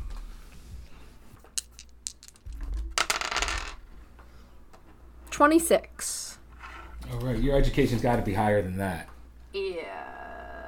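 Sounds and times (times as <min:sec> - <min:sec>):
dice rolling on a hard tabletop for a game: 0:01.5 - 0:03.8
speech: 0:05.4 - 0:06.3, 0:07.1 - 0:10.0.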